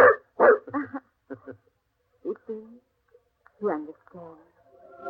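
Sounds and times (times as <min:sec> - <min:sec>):
dog barking: 0:00.0 - 0:00.7.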